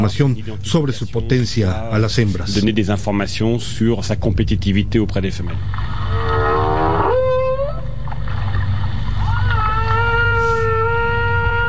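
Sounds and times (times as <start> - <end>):
speech: 0.0 - 6.2
low underwater rumble: 2.4 - 11.6
whale song moans: 6.0 - 8.2, 9.2 - 11.6.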